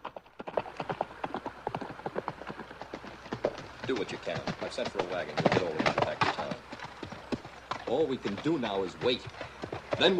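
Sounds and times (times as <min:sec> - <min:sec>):
horse galloping down a mountain pass: 0:00.0 - 0:10.1
speech: 0:03.9 - 0:06.3, 0:07.9 - 0:10.1.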